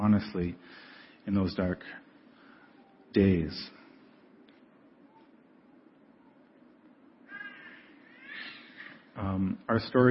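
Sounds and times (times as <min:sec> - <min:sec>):
speech: 0:00.0 - 0:02.1, 0:03.1 - 0:03.8, 0:09.2 - 0:10.0
low hum: 0:00.0 - 0:10.0
young child squawking: 0:07.3 - 0:09.1.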